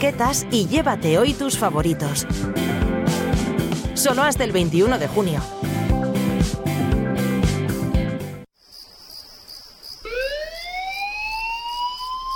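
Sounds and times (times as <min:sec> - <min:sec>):
speech: 0:00.0 - 0:02.8, 0:04.0 - 0:05.7
music: 0:00.0 - 0:08.5
loud wailing emergency alert siren with rising pitch for a fire brigade call-out on Tenerife: 0:10.0 - 0:12.3.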